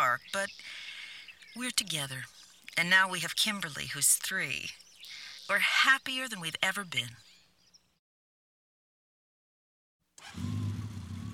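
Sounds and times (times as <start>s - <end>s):
speech: 0.2s - 0.8s, 1.5s - 7.3s
motorcycle engine roaring to life and rumbling: 10.2s - 11.3s.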